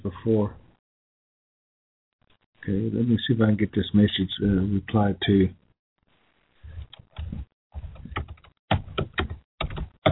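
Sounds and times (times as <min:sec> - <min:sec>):
speech: 0:00.2 - 0:00.6, 0:02.6 - 0:05.6
computer keyboard tapping: 0:06.8 - 0:10.1.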